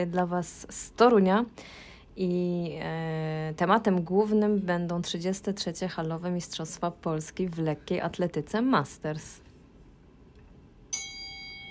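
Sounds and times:
speech: 0.0s - 9.4s
bright bell chime ringing: 10.9s - 11.6s.

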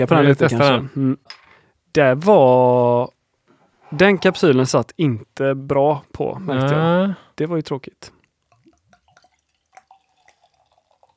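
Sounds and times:
speech: 0.0s - 1.4s, 2.0s - 3.2s, 3.9s - 8.2s
liquid plops and drips: 8.2s - 11.1s
beer glugging and gurgling as it is poured: 8.4s - 11.1s.

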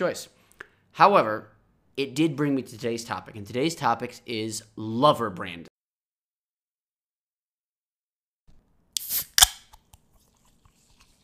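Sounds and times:
speech: 0.0s - 0.4s, 1.0s - 5.7s
can of grapefruit chu-hi cocktail cracking open: 9.0s - 10.0s.

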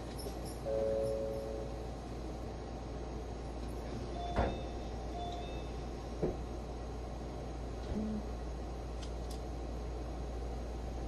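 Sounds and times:
low rumbling hum from the idling limited express train: 0.0s - 11.0s
limited express train doors sliding shut with thuds and clunks: 4.2s - 5.5s.

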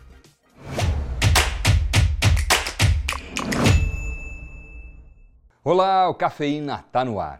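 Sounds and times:
podcast intro jingle of rhythmic percussive thumps and taps: 1.2s - 5.2s
bright sustained ringing tone: 3.6s - 5.4s
speech: 5.7s - 7.3s.

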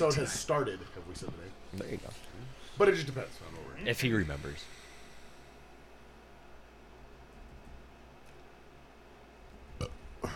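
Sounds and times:
speech: 0.0s - 4.8s
small burp: 9.8s - 10.3s.

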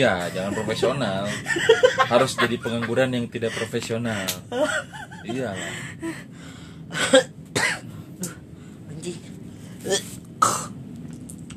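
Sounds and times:
laughter: 0.0s - 5.8s
speech: 0.0s - 7.4s, 9.0s - 10.1s
person coughing: 6.9s - 7.9s.

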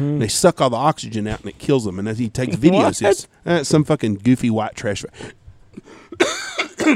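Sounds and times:
speech: 0.0s - 6.3s
person coughing: 2.5s - 3.2s, 6.1s - 6.9s.

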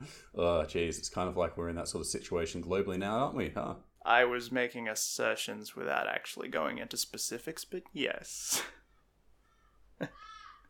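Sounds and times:
speech: 0.1s - 8.8s, 10.0s - 10.2s
crow cawing: 9.4s - 10.6s.

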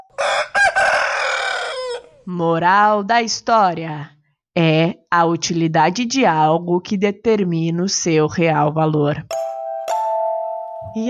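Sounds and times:
rooster crowing: 0.2s - 2.2s
speech: 2.3s - 9.4s, 10.9s - 11.0s.

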